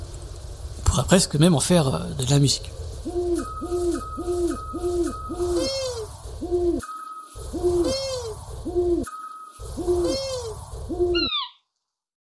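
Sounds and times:
speech: 0:01.0 - 0:06.8
scops long-eared and eagle owl calls: 0:03.0 - 0:09.1, 0:09.7 - 0:11.6.

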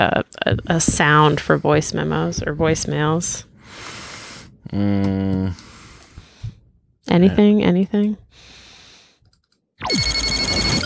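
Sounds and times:
speech: 0:00.0 - 0:04.0, 0:04.6 - 0:05.7, 0:07.1 - 0:08.6
electronic ringtone signalling an incoming hail: 0:09.8 - 0:10.8.

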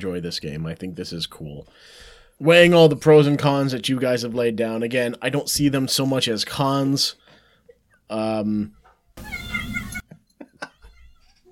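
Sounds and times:
speech: 0:00.0 - 0:07.2, 0:08.1 - 0:09.4
cat meowing loudly: 0:09.2 - 0:10.0.

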